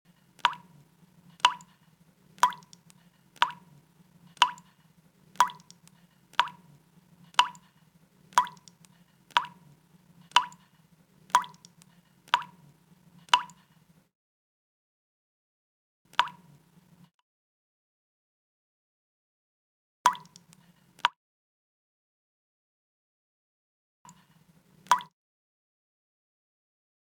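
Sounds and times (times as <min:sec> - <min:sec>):
dripping water tap: 0:00.2 - 0:13.8, 0:16.1 - 0:16.6, 0:20.1 - 0:20.6.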